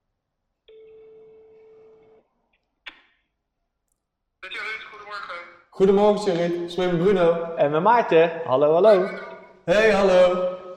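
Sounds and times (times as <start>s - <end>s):
telephone ringing tone while a call is placed: 0.7s - 2.2s
speech: 5.1s - 10.6s.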